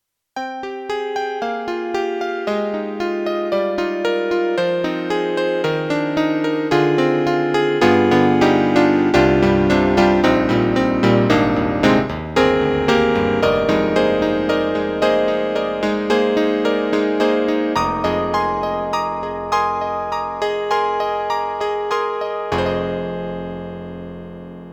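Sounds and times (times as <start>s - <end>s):
electric grand piano: 0.5s - 24.7s.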